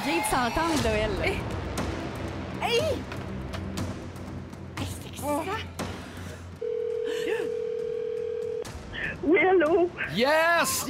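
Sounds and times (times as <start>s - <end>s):
speech: 0.2s - 1.7s, 2.6s - 3.2s, 5.2s - 5.7s, 9.2s - 10.8s
telephone tone as a number is dialed: 6.6s - 8.6s.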